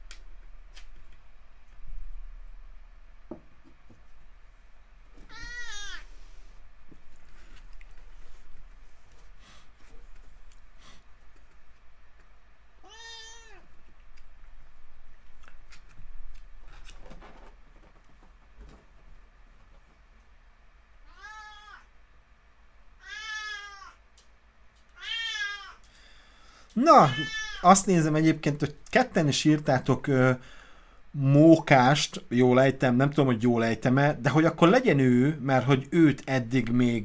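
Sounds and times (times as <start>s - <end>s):
faint rustling: 4.0s - 12.4s, 13.5s - 20.5s
cat meowing: 5.3s - 6.1s, 12.8s - 13.7s, 21.0s - 21.9s, 23.0s - 24.0s, 25.0s - 25.9s, 27.0s - 27.7s
speech: 26.8s - 37.0s.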